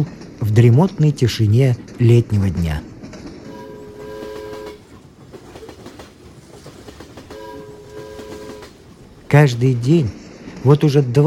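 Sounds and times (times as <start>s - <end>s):
speech: 0.0s - 2.9s, 9.3s - 11.2s
train wheels clattering on rails: 0.0s - 11.2s
train horn blasts: 3.5s - 4.9s, 7.3s - 8.8s.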